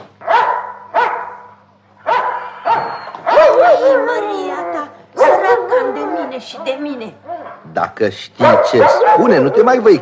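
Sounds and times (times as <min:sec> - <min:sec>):
small dog barking: 0:00.2 - 0:04.2, 0:05.2 - 0:06.0, 0:08.4 - 0:09.9
speech: 0:06.4 - 0:10.0.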